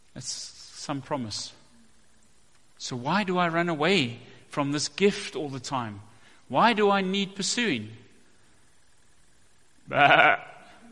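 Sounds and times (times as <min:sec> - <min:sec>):
speech: 0:00.2 - 0:01.6, 0:02.8 - 0:08.0, 0:09.9 - 0:10.5
single sheep bleating: 0:09.9 - 0:10.8.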